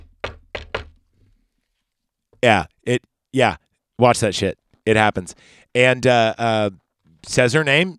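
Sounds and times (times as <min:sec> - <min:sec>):
sharp knocks on a surface: 0:00.0 - 0:01.0
speech: 0:02.4 - 0:07.9.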